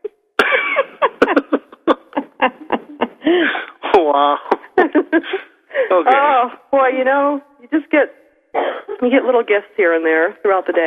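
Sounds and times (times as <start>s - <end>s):
woman coughing and sputtering after spitting out soda: 0.4s - 3.2s, 8.6s - 9.2s
short voiced laugh-like sounds: 1.1s - 6.3s
speech: 4.1s - 5.4s, 6.0s - 10.8s.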